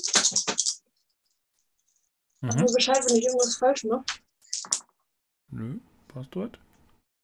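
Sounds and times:
three dice rolled clattering on a hard surface: 0.0s - 0.8s, 2.6s - 3.6s, 4.5s - 4.9s
speech: 2.4s - 4.2s, 5.5s - 6.7s.

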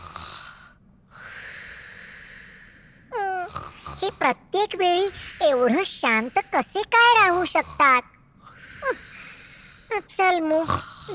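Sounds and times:
person snoring while asleep: 0.0s - 0.7s, 3.1s - 4.3s, 7.0s - 8.0s, 9.9s - 11.1s
speech: 4.2s - 8.1s, 10.0s - 11.1s.

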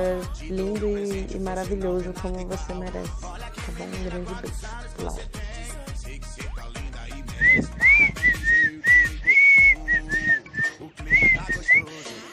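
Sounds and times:
speech: 0.0s - 5.4s
person whistling a tune: 7.3s - 11.9s.

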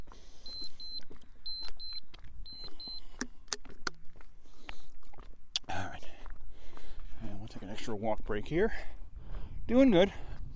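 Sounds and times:
running watch interval timer beeping: 0.0s - 3.4s
speech: 7.9s - 9.0s, 9.7s - 10.3s.

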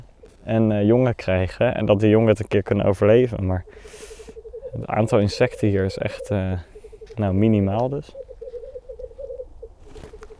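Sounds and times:
speech: 0.5s - 4.1s, 4.7s - 8.2s
black grouse males bubbling coos displaying at a lek: 3.5s - 7.4s, 8.0s - 10.3s
brief rustle: 9.8s - 10.3s.

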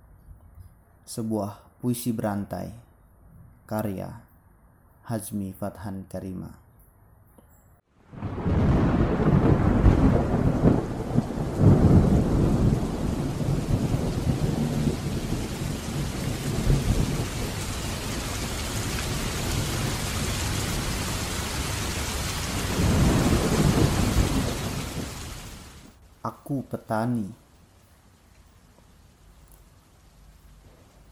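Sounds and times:
speech: 1.1s - 2.8s, 3.7s - 4.3s, 5.1s - 6.6s, 26.9s - 27.4s
heavy steady rain pouring down in a thunderstorm: 8.0s - 26.2s, 27.2s - 31.0s
deep rumbling thunder: 8.1s - 25.9s.

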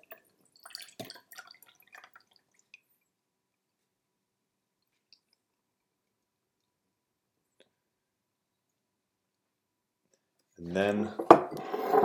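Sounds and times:
cold brew tea being poured out: 0.0s - 3.0s
faint drips of tea: 0.0s - 3.8s, 4.8s - 6.8s
speech: 10.6s - 11.8s.

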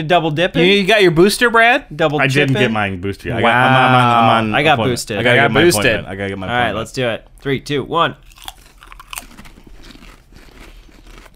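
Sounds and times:
speech: 0.0s - 8.2s
salt and vinegar potato chip crunching between the teeth: 8.2s - 11.3s.

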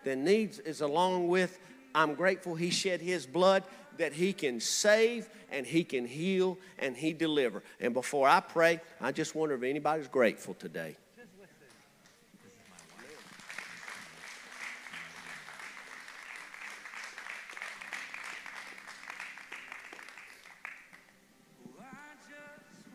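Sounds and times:
speech: 0.0s - 11.0s
audience applauding with hand claps: 12.1s - 21.2s.

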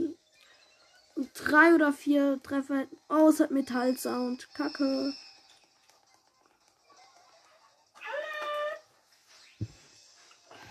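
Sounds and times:
electronic noise: 0.0s - 10.6s
speech: 1.4s - 5.3s
pet cat meowing: 8.0s - 8.8s.

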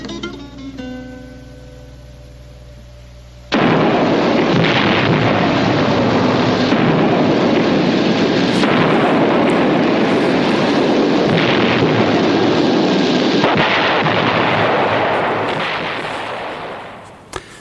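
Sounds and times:
loud explosion with roaring rumble and crackling bursts: 3.5s - 17.3s.

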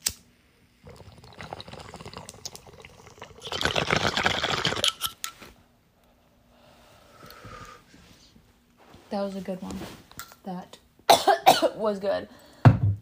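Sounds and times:
bong water bubbling: 0.8s - 5.0s
soft exhale: 6.5s - 8.4s
speech: 9.2s - 10.8s, 11.7s - 12.5s.

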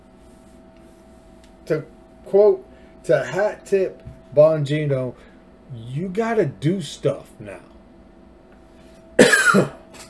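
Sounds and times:
speech: 1.7s - 7.7s, 9.2s - 9.8s
harsh raspy human cough: 9.2s - 10.0s.

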